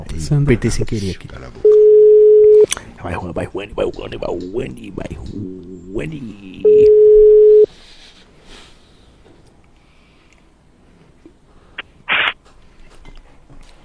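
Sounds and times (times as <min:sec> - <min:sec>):
speech: 0:00.1 - 0:01.6, 0:03.0 - 0:07.3
telephone ringing tone while placing a call: 0:01.6 - 0:02.6, 0:06.6 - 0:07.7.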